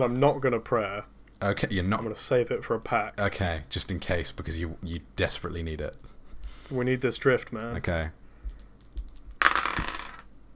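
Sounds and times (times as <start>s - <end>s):
speech: 0.0s - 6.1s, 6.7s - 8.2s
small dice rolling on a hard table for a tabletop game check: 8.5s - 10.3s.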